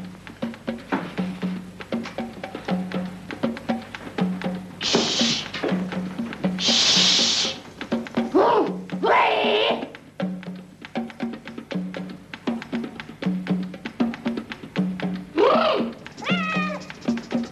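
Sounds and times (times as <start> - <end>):
soft rhythmic clicking: 0.0 - 9.1, 9.8 - 17.5
cat meowing loudly in an apartment: 8.4 - 9.9, 15.4 - 16.9.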